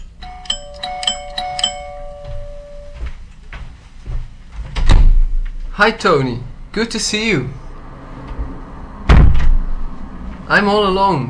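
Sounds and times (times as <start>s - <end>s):
doorbell chiming: 0.0s - 3.1s
rustling and clunking noises: 2.0s - 5.7s
speech: 5.8s - 7.6s, 10.5s - 11.2s.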